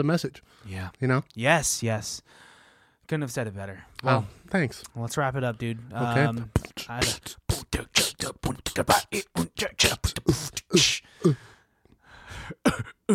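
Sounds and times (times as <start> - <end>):
speech: 0.0 - 2.5, 3.1 - 11.4, 12.6 - 13.1
rapid harsh coughs: 12.5 - 13.1.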